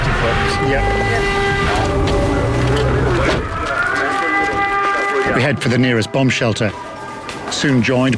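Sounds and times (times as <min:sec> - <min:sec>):
busy low rumble of outdoor noise: 0:00.0 - 0:04.0
air raid siren at a port wailing: 0:00.0 - 0:07.3
speech: 0:00.7 - 0:01.3, 0:05.4 - 0:06.9, 0:07.5 - 0:08.1.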